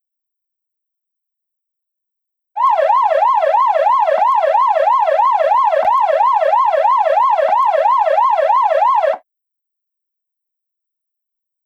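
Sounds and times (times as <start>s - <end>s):
ambulance siren wailing: 2.6s - 9.2s.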